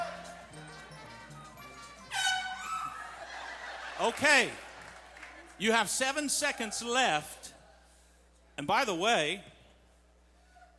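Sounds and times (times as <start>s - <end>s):
laughter: 0.0s - 5.7s
brassy horn honk to stop the clock in a timed game: 2.0s - 3.0s
speech: 4.0s - 4.6s, 5.6s - 7.5s, 8.6s - 9.5s.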